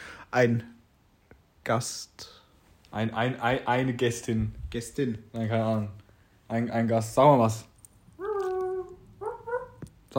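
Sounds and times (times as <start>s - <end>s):
speech: 0.3s - 0.8s, 1.6s - 7.7s
dog whimpering in high whining cries: 8.2s - 9.8s.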